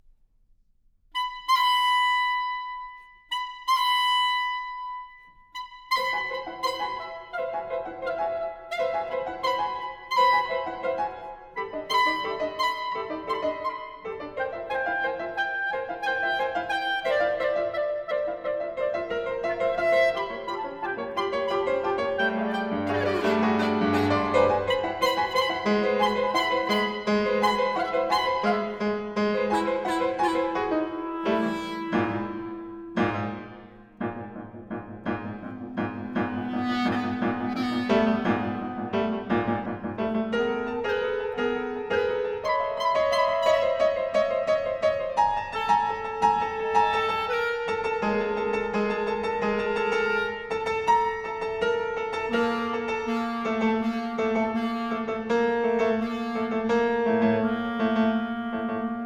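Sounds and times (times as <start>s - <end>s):
pianoforte: 0.0s - 59.0s
clarinet: 1.1s - 59.0s.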